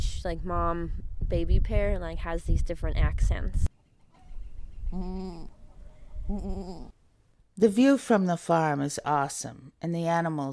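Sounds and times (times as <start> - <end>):
speech: 0.2 - 3.7, 4.9 - 5.6, 6.3 - 7.0, 7.6 - 10.5
goat bleating on a small goat farm: 4.9 - 5.6.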